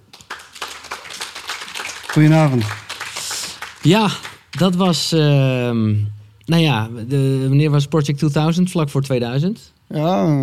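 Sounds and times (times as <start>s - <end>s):
crowd applauding: 0.0s - 5.2s
speech: 2.1s - 2.8s, 3.8s - 10.4s.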